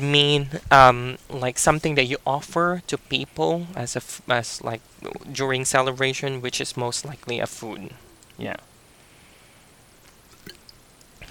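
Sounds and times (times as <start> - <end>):
speech: 0.0 - 8.7
soft hiss: 0.0 - 11.2
water sloshing and dripping: 10.1 - 10.8
person handling and sipping water: 10.1 - 11.2.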